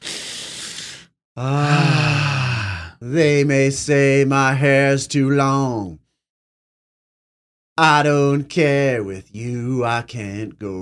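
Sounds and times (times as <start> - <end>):
deep breath drawn in before singing: 0.0 - 1.1, 1.8 - 3.0
speech: 1.4 - 2.0, 3.0 - 6.0, 7.8 - 10.8.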